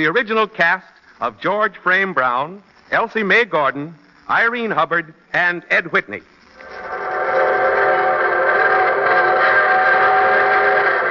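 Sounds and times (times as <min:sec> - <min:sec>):
speech: 0:00.0 - 0:06.3
evening train whistle blast: 0:06.9 - 0:11.1.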